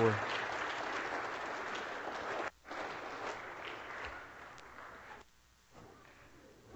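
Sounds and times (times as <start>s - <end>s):
congregation applauding: 0.0s - 5.2s.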